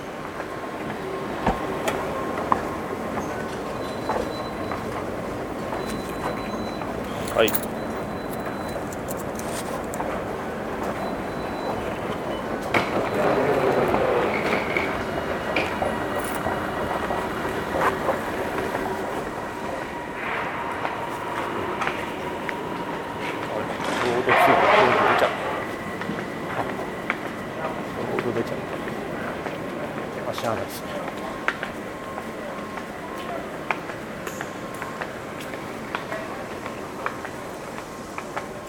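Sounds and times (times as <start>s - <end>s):
airport rail link commuter train rumbling and humming through a station: 0.0s - 38.6s
commuter train brakes squealing and screeching: 2.0s - 9.7s, 10.8s - 29.3s
speech: 7.4s - 7.7s.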